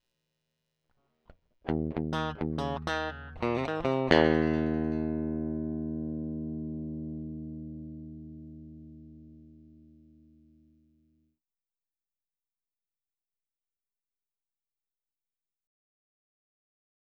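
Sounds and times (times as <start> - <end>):
crunchy blues music: 1.7 - 10.7.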